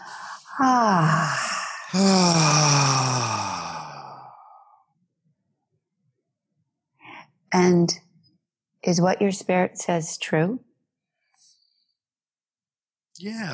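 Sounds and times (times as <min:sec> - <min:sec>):
deep breath let out as a long loud voiced sigh: 0:00.0 - 0:04.8
speech: 0:00.6 - 0:02.9, 0:08.9 - 0:10.7, 0:13.2 - 0:13.5.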